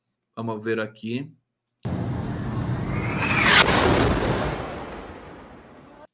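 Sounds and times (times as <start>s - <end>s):
speech: 0.4s - 1.4s
explosion at a hospital heard in a news video: 1.9s - 6.1s.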